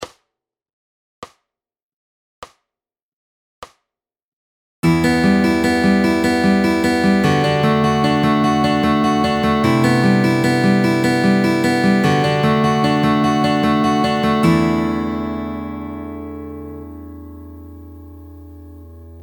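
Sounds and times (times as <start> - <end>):
fingerpicking pattern through all chords: 4.8 - 19.2.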